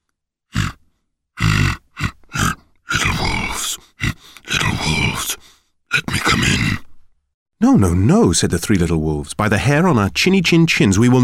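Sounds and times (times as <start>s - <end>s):
voice imitating a pig grunting at a door: 0.5s - 0.8s, 1.4s - 6.9s
speech: 7.8s - 11.2s.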